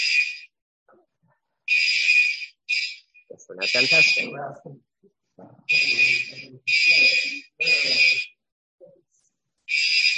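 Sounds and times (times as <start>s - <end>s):
building alarm blaring during a test: 0.0s - 0.5s, 1.7s - 4.5s, 5.7s - 8.4s, 9.7s - 10.1s
speech: 3.5s - 8.3s.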